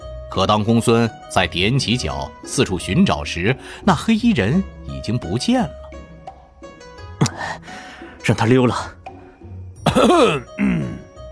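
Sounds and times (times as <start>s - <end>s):
speech: 0.3s - 5.8s, 8.3s - 9.0s, 10.0s - 10.6s
man giving a deliberate throat-clearing cough: 9.8s - 11.1s.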